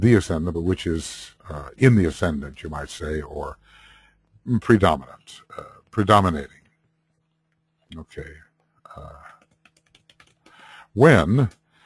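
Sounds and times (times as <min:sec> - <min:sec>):
speech: 0:00.0 - 0:03.7, 0:04.4 - 0:06.6, 0:07.9 - 0:08.4, 0:09.0 - 0:09.3, 0:11.0 - 0:11.6
typing on a computer keyboard: 0:09.2 - 0:10.7.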